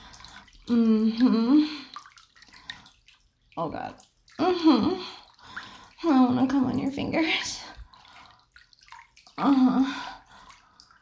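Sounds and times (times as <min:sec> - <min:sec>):
small splashes: 0:00.0 - 0:10.9
water sloshing in a bathtub: 0:00.0 - 0:10.9
speech: 0:00.7 - 0:01.9, 0:03.6 - 0:05.2, 0:06.0 - 0:07.6, 0:09.4 - 0:10.1.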